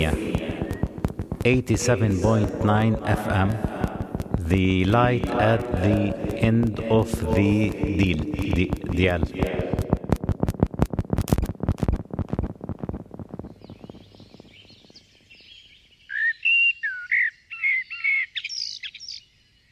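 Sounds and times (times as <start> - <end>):
speech: 0.0 - 0.3, 1.4 - 3.7, 4.5 - 9.6
rapid dry clicking chatter of a blackbird: 0.0 - 14.6
blackbird singing fluting whistled phrases: 13.4 - 19.7.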